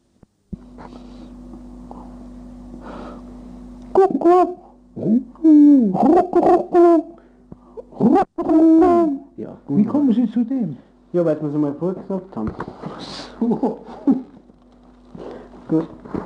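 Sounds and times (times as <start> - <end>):
steady low hum: 0.0 - 16.2
man imitating pigeons cooing with his voice: 3.9 - 7.2, 7.8 - 9.4
speech: 4.2 - 7.1, 8.4 - 14.3, 15.7 - 16.2
laughter: 13.3 - 14.4.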